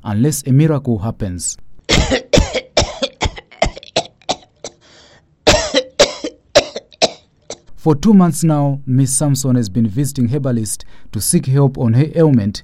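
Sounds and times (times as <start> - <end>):
speech: 0.0 - 2.2, 7.8 - 12.6
heavy harsh coughing: 1.9 - 7.7.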